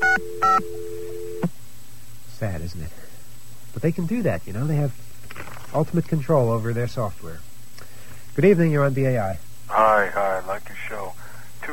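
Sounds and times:
steady phone dial tone: 0.0s - 1.5s
speech: 2.4s - 3.1s, 3.7s - 5.1s, 5.7s - 7.5s, 8.4s - 11.1s.

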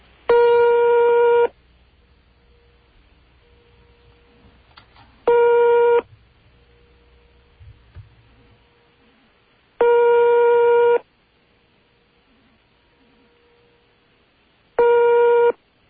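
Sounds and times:
buzzing telephone ringback tones on a call to Yugoslavia: 0.3s - 1.5s, 5.3s - 6.1s, 9.8s - 11.0s, 14.8s - 15.6s.

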